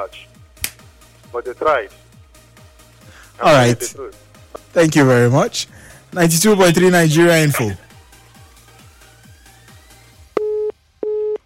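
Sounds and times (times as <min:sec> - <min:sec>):
speech: 0:00.0 - 0:00.3, 0:01.3 - 0:02.0, 0:03.4 - 0:07.8
phone line busy tone after a dropped connection: 0:10.4 - 0:11.4.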